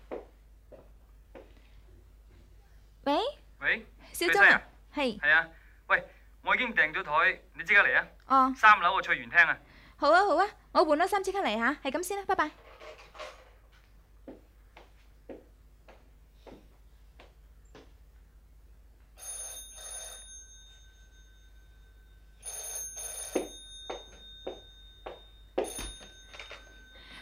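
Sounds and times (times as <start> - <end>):
speech: 3.7 - 13.0
telephone ringing: 19.2 - 27.2.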